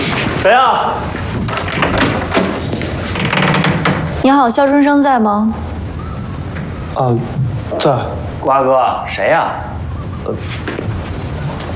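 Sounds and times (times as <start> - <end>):
door being opened: 0.0 - 4.3
speech: 0.4 - 1.7, 4.2 - 5.7, 7.0 - 10.9.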